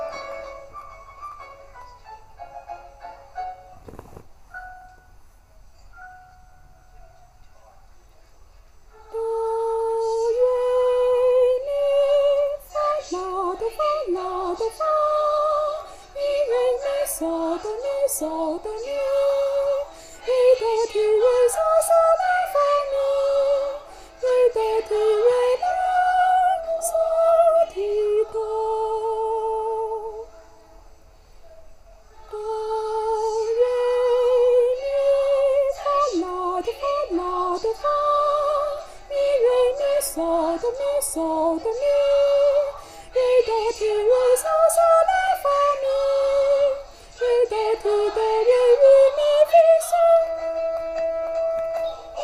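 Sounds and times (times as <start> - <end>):
soprano voice: 9.0 - 30.6, 32.1 - 52.2.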